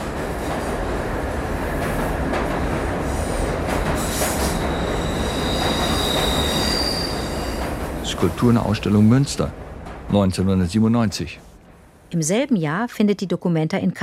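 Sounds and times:
subway train rushing past near a meadow in Münster: 0:00.0 - 0:12.1
subway train high squealing wheel tones: 0:04.0 - 0:07.8
speech: 0:08.2 - 0:11.5, 0:12.1 - 0:14.0.

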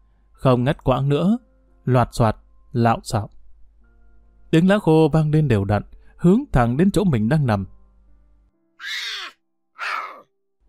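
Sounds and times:
speech: 0:00.4 - 0:03.4, 0:04.5 - 0:07.8, 0:08.8 - 0:09.4
stray cat calling harshly: 0:08.8 - 0:10.3.

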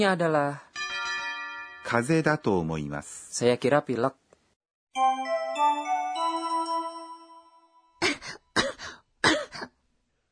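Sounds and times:
speech: 0:00.0 - 0:00.6, 0:01.9 - 0:04.2
brief bright chime melody: 0:00.8 - 0:02.8, 0:04.9 - 0:08.0
harsh coughs from a patient with a fever at a doctor's visit: 0:08.0 - 0:09.8.

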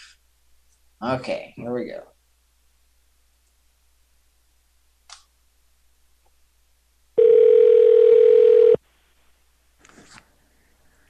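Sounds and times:
speech: 0:01.0 - 0:02.2
telephone line tone: 0:07.2 - 0:08.8.

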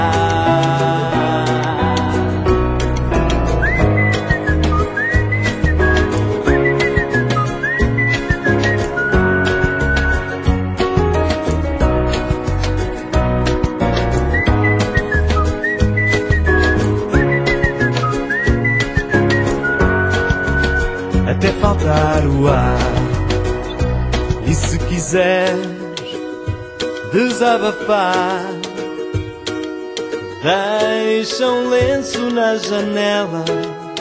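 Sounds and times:
Portuguese-language song with full instrumental backing: 0:00.0 - 0:33.9
person whistling a melody: 0:03.4 - 0:10.5, 0:14.2 - 0:21.0
speech: 0:27.6 - 0:28.6, 0:31.2 - 0:33.8.

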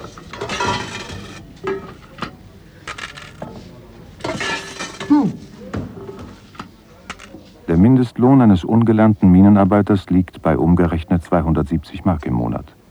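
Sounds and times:
coins and banknotes thrown onto a tin plate by cashiers: 0:00.0 - 0:07.6
handling noises: 0:00.0 - 0:12.8
speech: 0:07.8 - 0:12.8.

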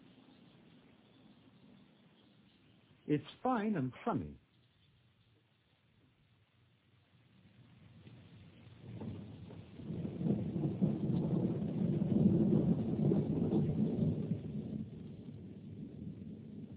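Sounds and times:
speech: 0:03.1 - 0:04.4
wind and rain rushing: 0:06.8 - 0:16.7.

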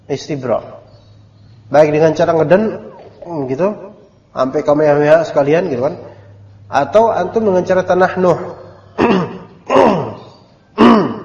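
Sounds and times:
speech: 0:00.1 - 0:00.8, 0:01.7 - 0:06.1, 0:06.7 - 0:09.2
person clearing throat: 0:09.0 - 0:11.2.

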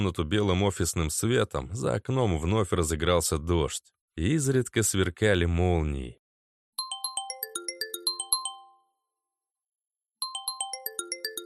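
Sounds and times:
speech: 0:00.0 - 0:06.2
mobile phone ringtone with electronic chime melody: 0:06.8 - 0:09.2, 0:10.2 - 0:11.4.

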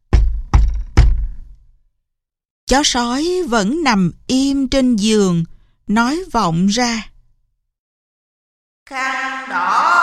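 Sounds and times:
heavy knocking on a door: 0:00.0 - 0:01.5
speech: 0:02.7 - 0:07.1, 0:08.9 - 0:09.9.

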